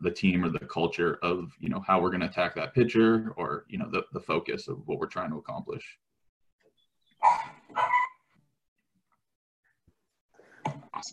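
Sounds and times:
speech: 0.0 - 6.1, 11.0 - 11.1
dog barking: 7.2 - 8.2.

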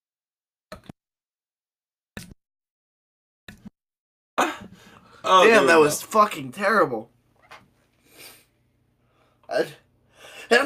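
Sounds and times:
person sneezing: 4.4 - 4.8
speech: 5.2 - 7.2, 9.5 - 9.8.

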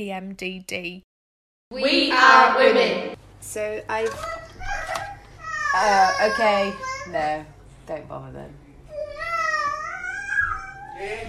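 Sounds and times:
speech: 0.0 - 1.1, 1.7 - 4.4, 5.7 - 8.6, 11.0 - 11.2
toddler babbling and fussing: 4.2 - 7.1, 8.9 - 11.2.

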